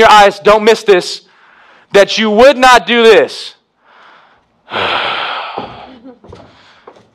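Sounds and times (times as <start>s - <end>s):
speech: 0.0s - 1.2s, 1.9s - 3.6s, 4.7s - 5.2s
loud heavy breath close to the microphone: 1.3s - 1.9s, 3.8s - 7.1s
breathy puffs and gasps: 3.8s - 7.1s.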